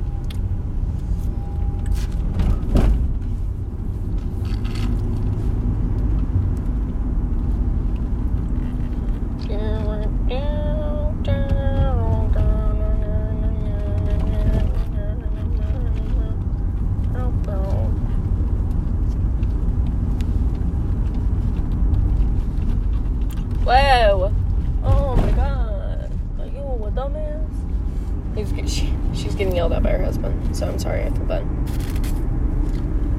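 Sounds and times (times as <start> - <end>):
car driving with engine and road rumble: 0.0 - 33.1
voices: 9.4 - 16.4, 23.6 - 27.5, 28.4 - 31.4.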